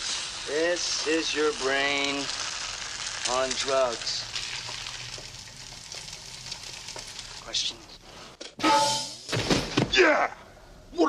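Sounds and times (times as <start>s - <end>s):
eggs sizzling in a frying pan: 0.0s - 8.4s
speech: 0.5s - 2.5s, 3.3s - 4.3s, 7.5s - 7.9s, 10.0s - 11.0s.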